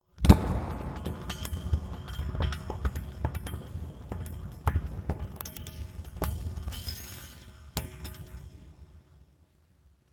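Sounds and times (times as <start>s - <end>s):
sci-fi boiling metal spill: 0.2s - 8.4s.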